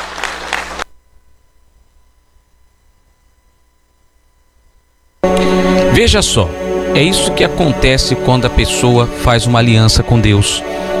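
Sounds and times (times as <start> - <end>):
group applause for the name of the Lord Jesus: 0.0 - 0.9
faint low hum: 0.0 - 10.9
speech: 6.0 - 10.9.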